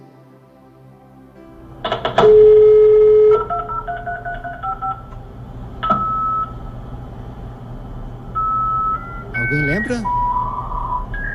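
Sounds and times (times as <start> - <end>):
long steady tone of an old dial-up fax modem: 1.4 - 11.3
electronic beeps and warbling pitches of an old dial-up fax modem connecting: 9.0 - 11.3
speech: 9.8 - 10.2.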